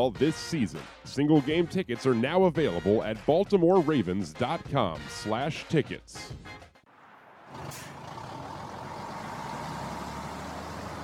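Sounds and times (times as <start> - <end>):
speech: 0.0 - 6.6
tractor trailer truck engine drone: 6.9 - 11.0
tractor trailer truck air brakes hissing: 7.6 - 8.1.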